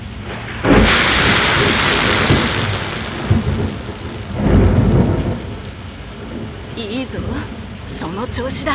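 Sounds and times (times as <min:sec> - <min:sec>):
steady heavy rain: 0:00.8 - 0:06.6
thunder crack and rumble from a rain cloud overhead: 0:00.8 - 0:06.6
speech: 0:08.2 - 0:08.7.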